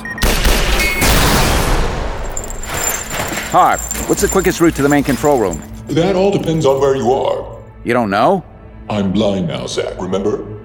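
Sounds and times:
gunfire bursts in a long white hallway: 0.2 - 2.3
speech: 3.5 - 10.5.

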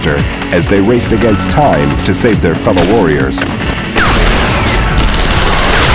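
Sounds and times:
speech: 0.0 - 3.9
heavy gunfire in battle: 4.0 - 5.9
rockets exploding in battle: 4.0 - 5.9.

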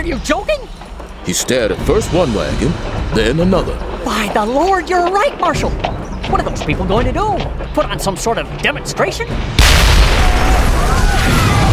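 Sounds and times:
speech: 0.0 - 10.6
explosion roar from a blast near a mining town's main street: 9.5 - 11.7.

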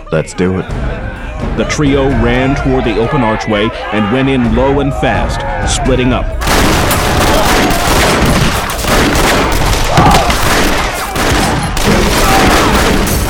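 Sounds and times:
speech: 0.1 - 6.9
heavy gunfire: 6.4 - 13.2.

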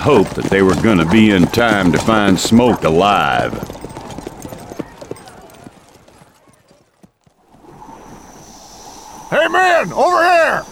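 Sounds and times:
speech: 0.0 - 3.8, 9.8 - 10.7
horse hooves clip-clopping along a trail: 0.0 - 7.7.

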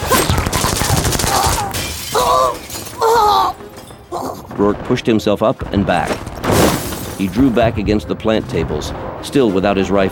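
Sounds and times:
bright ringing bursts of breaking glass: 0.0 - 4.1, 6.4 - 7.5
large glass wall shattering as a woman falls through it: 0.0 - 4.2, 6.3 - 7.5
speech: 4.6 - 6.3, 7.2 - 10.1.

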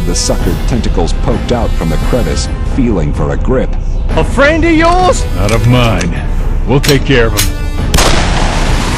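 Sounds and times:
speech: 0.1 - 7.6
gunshot fired at a huge tentacled creature: 7.9 - 8.8.

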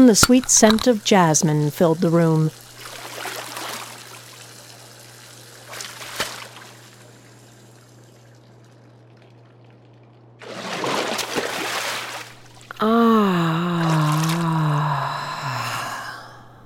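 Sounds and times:
speech: 0.0 - 2.6
low steady hum: 0.0 - 16.6
bath water running into a hotel bath and splashing: 1.0 - 13.0, 13.6 - 14.9
wavering sigh-like vocal tone: 12.7 - 16.6.

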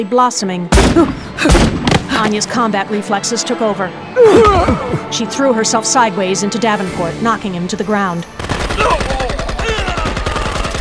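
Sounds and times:
speech: 0.0 - 9.2
sustained rapid gunfire during an ambush: 8.3 - 10.7.

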